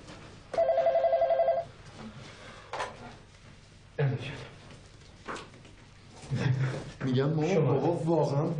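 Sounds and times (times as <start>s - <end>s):
telephone ringing: 0.6s - 1.7s
speech: 7.1s - 8.5s.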